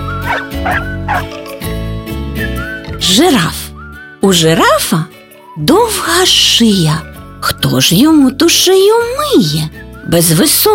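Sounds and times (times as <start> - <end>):
musical backing: 0.0 - 7.6
dog yapping: 0.2 - 1.3
speech: 0.6 - 1.4, 3.1 - 10.7.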